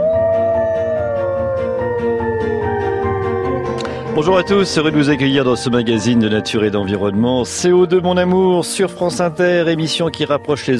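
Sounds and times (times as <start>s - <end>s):
wolves howling in a chorus: 0.0s - 5.2s
speech: 4.2s - 10.7s.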